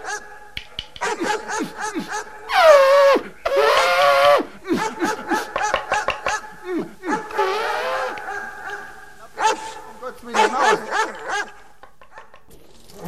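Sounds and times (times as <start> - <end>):
dogs barking: 0.0 - 12.5
laughter: 4.4 - 12.5.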